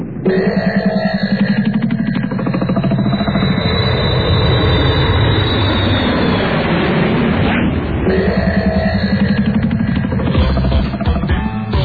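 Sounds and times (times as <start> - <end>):
aircraft engine roaring in flight: 0.0 - 11.7
speech: 0.3 - 0.8.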